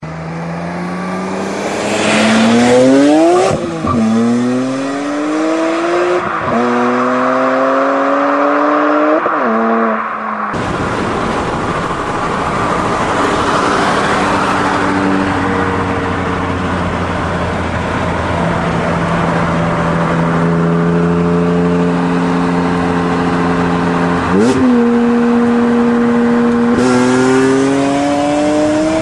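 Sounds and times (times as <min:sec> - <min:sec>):
BMW M3 engine: 0:00.0 - 0:29.0.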